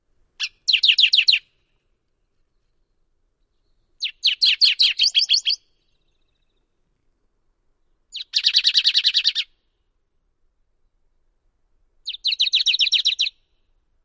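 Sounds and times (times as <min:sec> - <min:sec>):
Canyon Towhee songs: 0:00.4 - 0:09.9, 0:12.0 - 0:13.8.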